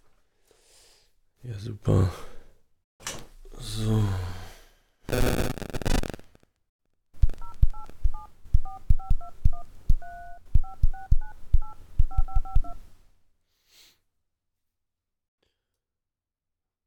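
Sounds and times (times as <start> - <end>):
speech: 1.4 - 2.3, 3.8 - 4.3
telephone dialing tones: 7.3 - 12.8.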